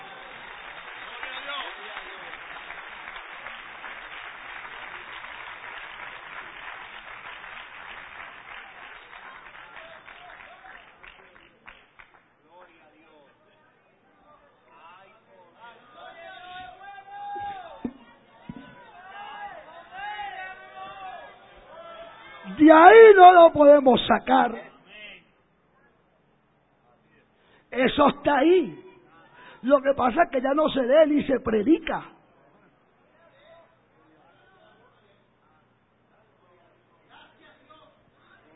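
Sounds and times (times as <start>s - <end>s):
church audience applauding: 0.0s - 12.3s
scattered shouts from church crowd: 16.0s - 22.6s
speech: 22.7s - 24.7s, 28.0s - 28.8s, 29.6s - 32.1s.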